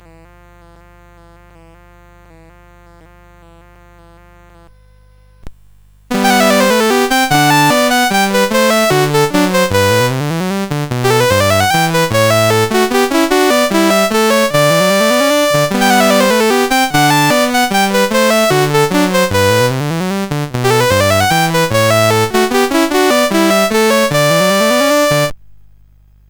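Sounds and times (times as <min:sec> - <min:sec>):
prelude in G: 0:06.1 - 0:25.4.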